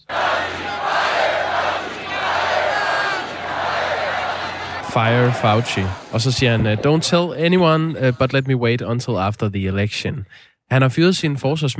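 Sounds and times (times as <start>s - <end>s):
large rally crowd chanting a slogan in unison: 0.0s - 7.1s
speech: 5.0s - 11.7s.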